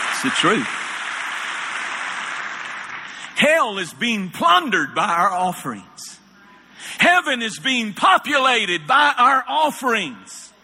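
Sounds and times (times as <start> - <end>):
large audience clapping in response to a preacher: 0.0 - 3.4
speech: 0.2 - 0.8, 3.4 - 6.2, 7.0 - 10.4.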